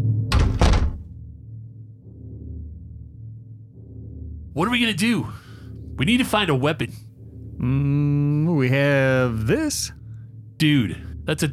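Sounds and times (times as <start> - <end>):
low steady hum of room noise: 0.0 - 11.5
door closing with a heavy double thud: 0.3 - 1.1
speech: 4.6 - 5.4, 6.0 - 7.0, 7.6 - 10.0, 10.6 - 11.5.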